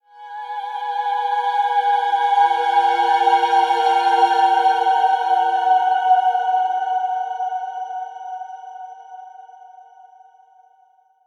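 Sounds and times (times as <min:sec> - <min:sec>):
mystic choir sweep: 0:00.4 - 0:08.2.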